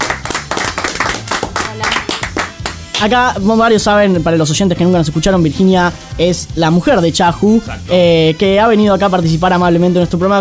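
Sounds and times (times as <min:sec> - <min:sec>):
audience applause welcoming a guest on a talk program: 0:00.0 - 0:03.1
speech: 0:03.0 - 0:10.3.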